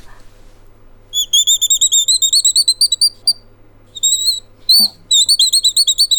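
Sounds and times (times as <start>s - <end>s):
wooden hexagonal bird call with metal screw squeaking like birdsong: 1.2s - 3.4s, 4.0s - 6.1s.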